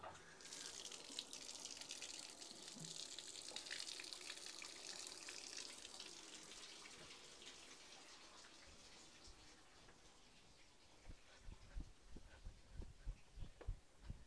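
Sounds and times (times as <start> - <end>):
water running from a tap: 0.1 - 11.0
low thumps and knocks: 11.1 - 14.2.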